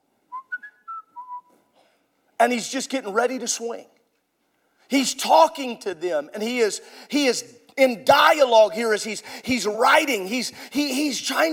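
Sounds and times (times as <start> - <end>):
person whistling a short wavering melody: 0.3 - 1.6
speech: 2.4 - 4.0, 4.9 - 11.5.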